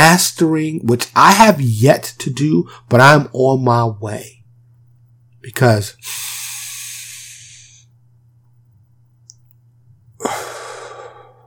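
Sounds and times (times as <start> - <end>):
faint steady hum: 0.0 - 11.4
speech: 0.1 - 4.4, 5.4 - 6.4
person breathing in through the nose and out through the mouth: 6.0 - 7.9, 10.2 - 11.4.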